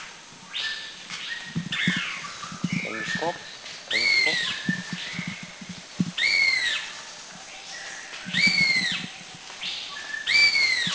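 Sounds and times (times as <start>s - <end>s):
forest background sounds at Krung Ching in Thailand: 0.0s - 10.9s
black-and-yellow broadbill whistled calls at Krung Ching in Thailand: 0.5s - 5.5s, 6.2s - 6.9s, 8.3s - 9.0s, 9.8s - 10.9s
speech: 3.2s - 3.5s.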